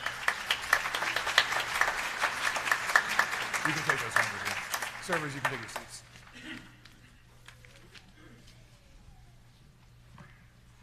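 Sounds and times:
audience applause: 0:00.0 - 0:06.0
speech: 0:03.7 - 0:04.4, 0:05.1 - 0:06.7.

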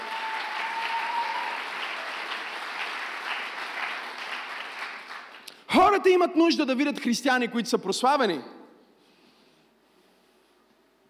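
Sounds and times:
large audience applauding: 0:00.0 - 0:05.6
speech: 0:05.9 - 0:08.6.

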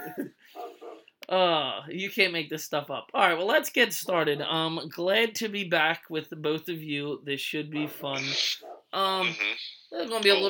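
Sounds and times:
speech: 0:00.1 - 0:00.5, 0:01.3 - 0:10.4
dog barking and yipping excitedly: 0:00.5 - 0:01.1, 0:07.8 - 0:09.0.

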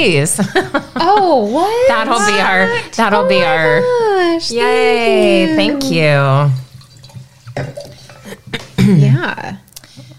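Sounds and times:
speech: 0:00.0 - 0:06.6, 0:07.6 - 0:07.8, 0:08.5 - 0:09.6
drink being poured into a glass: 0:05.6 - 0:08.5.

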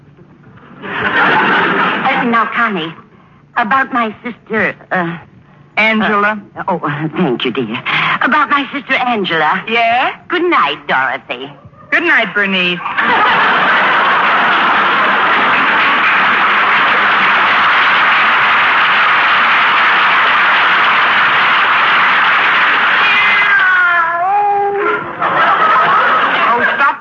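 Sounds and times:
steady broadband noise: 0:00.0 - 0:27.0
laughter: 0:00.8 - 0:02.3, 0:12.8 - 0:22.5, 0:24.7 - 0:27.0
speech: 0:02.3 - 0:03.0, 0:03.6 - 0:13.4
cat meowing: 0:22.9 - 0:24.8.

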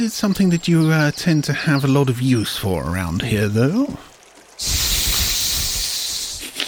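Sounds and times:
speech: 0:00.0 - 0:04.9
person imitating a snake's hiss: 0:04.6 - 0:06.6.

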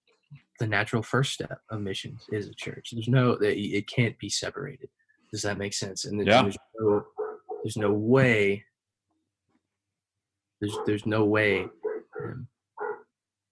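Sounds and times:
speech: 0:00.6 - 0:08.7, 0:10.6 - 0:12.5
dog barking and yelping: 0:07.1 - 0:07.7, 0:10.7 - 0:11.0, 0:11.6 - 0:13.1.

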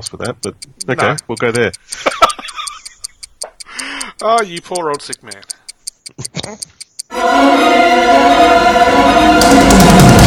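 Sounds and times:
speech: 0:00.0 - 0:02.2, 0:04.2 - 0:09.4
clock ticking in crisp bright clicks: 0:00.0 - 0:07.1
short burst of laughter: 0:02.0 - 0:03.0.

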